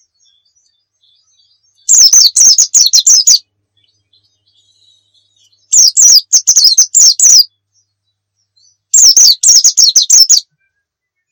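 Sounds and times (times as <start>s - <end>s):
Muria-type white-eye twittering: 1.8s - 3.4s, 5.7s - 7.5s, 9.0s - 10.4s.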